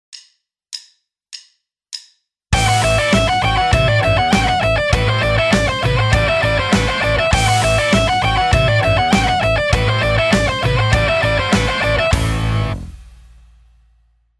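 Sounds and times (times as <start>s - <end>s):
alternate picked rock guitar lick: 2.6s - 13.1s.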